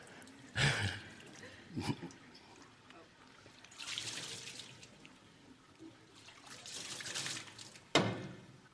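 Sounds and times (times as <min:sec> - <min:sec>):
water pouring and splashing into an overflowing container: 0:00.0 - 0:08.4.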